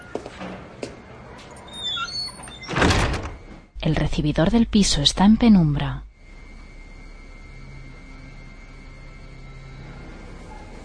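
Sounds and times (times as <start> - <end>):
high squeaks: 1.6 - 2.8
building entrance door swinging open: 1.6 - 3.6
speech: 3.8 - 6.1.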